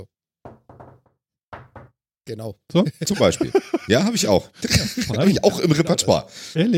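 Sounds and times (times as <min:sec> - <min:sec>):
knuckles rapping on a door in a short rhythmic pattern: 0:00.4 - 0:02.0
speech: 0:02.3 - 0:06.7
laughter: 0:03.0 - 0:06.7.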